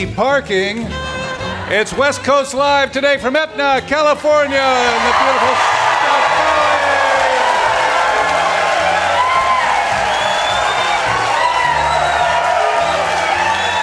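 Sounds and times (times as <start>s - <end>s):
speech: 0.0s - 1.1s, 1.7s - 5.8s
big live audience cheering loudly in Etna California: 4.4s - 13.8s.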